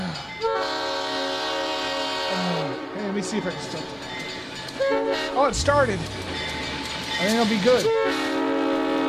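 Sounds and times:
train horn blaring at a railroad crossing: 0.4 - 3.5, 4.8 - 6.7, 7.8 - 9.0
speech: 3.1 - 4.2, 4.8 - 6.5, 7.2 - 8.4.

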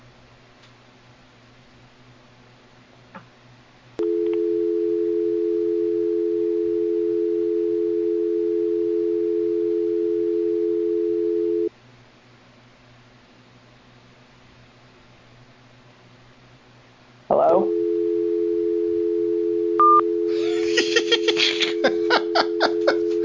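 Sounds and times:
telephone dial tone after a hang-up: 4.0 - 11.7, 17.7 - 20.2
laughter: 20.3 - 23.2.

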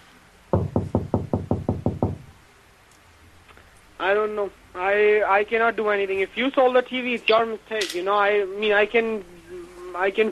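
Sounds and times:
knocking on a bathroom door from inside: 0.5 - 2.3
speech: 4.0 - 9.3, 10.0 - 10.3.

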